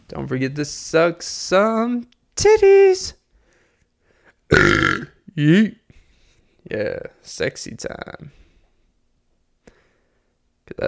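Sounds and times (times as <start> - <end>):
speech: 0.1 - 3.2, 4.5 - 5.8, 6.6 - 8.4
long rumbling burp: 4.5 - 5.8.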